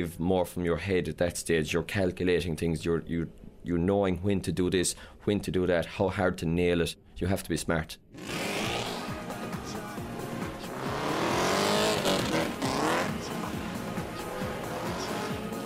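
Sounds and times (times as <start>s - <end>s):
speech: 0.0s - 8.4s
race car engine screaming at high revs through gear changes: 8.2s - 9.2s, 10.4s - 13.5s, 14.1s - 15.4s.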